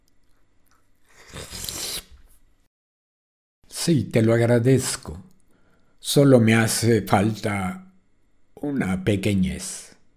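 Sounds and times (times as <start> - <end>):
faint moist chewing: 0.0 - 2.1
juicy bite into an orange: 0.0 - 2.2
speech: 3.8 - 5.3, 6.0 - 7.8, 8.6 - 9.9.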